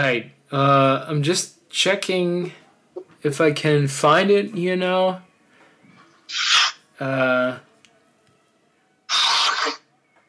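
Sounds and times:
speech: 0:00.0 - 0:02.6, 0:03.2 - 0:05.3, 0:06.3 - 0:07.7
person with hay fever sneezing: 0:09.1 - 0:09.8.

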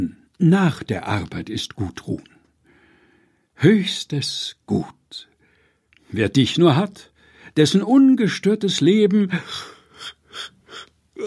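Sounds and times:
speech: 0:00.0 - 0:02.3, 0:03.6 - 0:05.3, 0:06.1 - 0:11.2
breathy yawn with airy gasping exhalations: 0:10.7 - 0:11.2.

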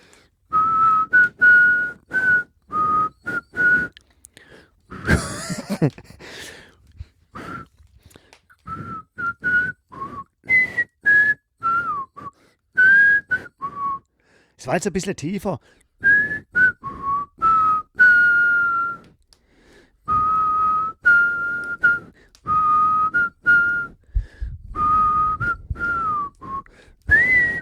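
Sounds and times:
person whistling a melody: 0:00.5 - 0:04.0, 0:07.4 - 0:07.8, 0:08.6 - 0:14.1, 0:16.0 - 0:19.2, 0:20.0 - 0:24.0, 0:24.6 - 0:27.6
laughter: 0:04.9 - 0:06.3
speech: 0:05.8 - 0:06.6, 0:14.6 - 0:15.8.

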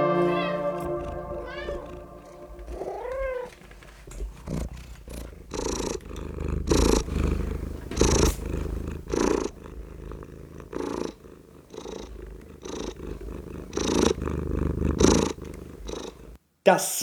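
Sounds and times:
fat male cat purring: 0:00.2 - 0:16.4
speech: 0:16.7 - 0:17.0.

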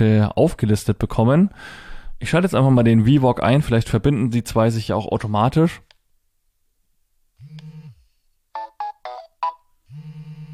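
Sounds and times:
speech: 0:00.0 - 0:05.9
low electronic buzzing vibration: 0:07.4 - 0:08.0, 0:09.9 - 0:10.5.

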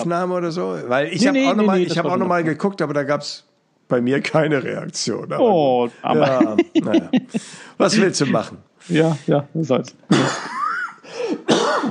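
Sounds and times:
speech: 0:00.0 - 0:10.6
laughter: 0:06.2 - 0:08.5, 0:10.1 - 0:11.0
strained partly voiced coughs held back: 0:10.1 - 0:11.8.

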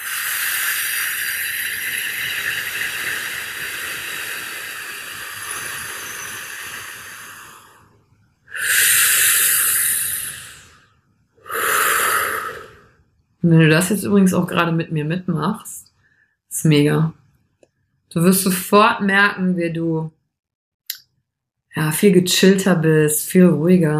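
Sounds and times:
deep breathing during a relaxation exercise: 0:00.0 - 0:13.1, 0:15.9 - 0:16.4
speech: 0:13.4 - 0:15.8, 0:16.6 - 0:17.2, 0:18.1 - 0:20.2, 0:21.8 - 0:23.9.

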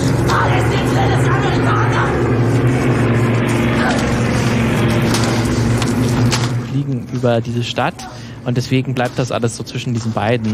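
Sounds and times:
several propeller airplanes droning overhead above a city: 0:00.0 - 0:10.5
speech: 0:07.2 - 0:10.5.

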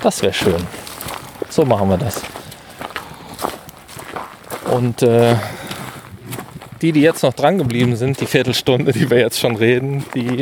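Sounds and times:
speech: 0:00.0 - 0:00.9, 0:01.5 - 0:02.4, 0:04.7 - 0:05.6, 0:06.8 - 0:10.4
horse hooves clip-clopping: 0:00.0 - 0:10.4.

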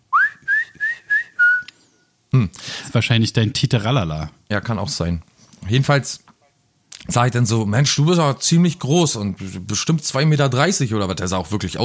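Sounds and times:
high-pitched short clear whistled notes: 0:00.2 - 0:01.7
speech: 0:02.3 - 0:06.2, 0:07.1 - 0:11.8.

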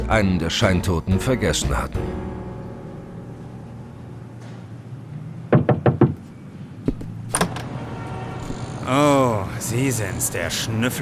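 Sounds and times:
speech: 0:00.1 - 0:02.3, 0:09.7 - 0:11.0
knocking on a door: 0:05.5 - 0:06.3
dull thud of a door: 0:05.5 - 0:07.6
door latch click as the door is opened: 0:07.0 - 0:07.7.

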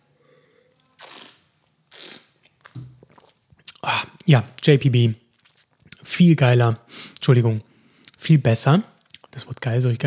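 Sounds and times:
slurping sips of wine close to the microphone: 0:01.0 - 0:03.8
speech: 0:04.3 - 0:05.2, 0:06.2 - 0:10.0.

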